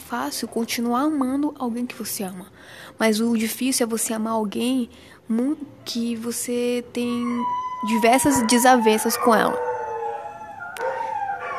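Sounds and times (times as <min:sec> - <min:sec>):
speech: 0:00.1 - 0:09.7
dogs howling: 0:07.0 - 0:11.5.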